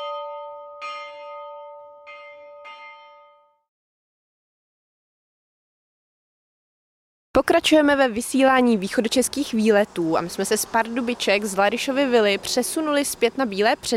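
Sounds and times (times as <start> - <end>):
memorial bell tolling for the executed: 0.0 - 3.7
speech: 7.4 - 13.9.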